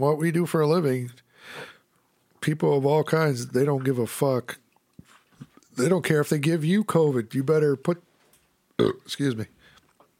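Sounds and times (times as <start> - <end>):
speech: 0.0 - 1.7, 2.4 - 4.6, 5.8 - 8.1, 8.8 - 9.6
loud low gurgling burp: 8.8 - 9.1.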